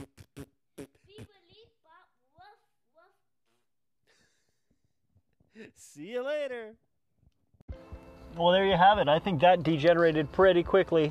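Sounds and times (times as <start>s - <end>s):
buzzy mouth-made fart noises: 0.0s - 1.4s, 3.3s - 4.0s
speech: 5.6s - 6.9s, 8.4s - 11.0s.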